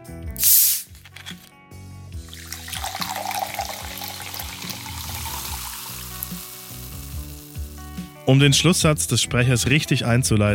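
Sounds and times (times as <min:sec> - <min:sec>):
soft music: 0:00.0 - 0:10.5
sealed screw-cap bottle of mineral water opening hiss: 0:00.4 - 0:01.5, 0:02.3 - 0:08.1
mineral water pouring into a glass: 0:02.2 - 0:07.9
mineral water bubbles fizzing: 0:02.2 - 0:08.0
speech: 0:08.3 - 0:10.5.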